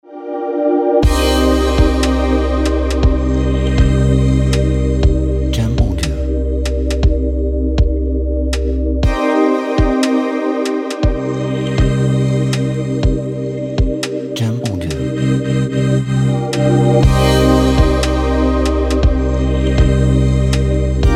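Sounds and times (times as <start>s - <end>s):
ambient chill trap music: 0.0s - 21.1s.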